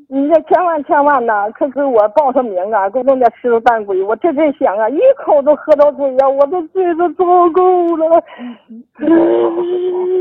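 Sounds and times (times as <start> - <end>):
speech: 0.3 - 10.2
woman crying: 8.0 - 10.2
woman wailing moan: 9.0 - 10.2.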